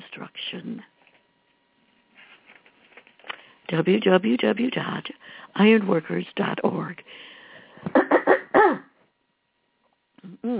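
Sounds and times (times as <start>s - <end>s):
speech: 3.7s - 8.0s
person clearing a froggy throat with rasping coughs: 7.9s - 8.9s.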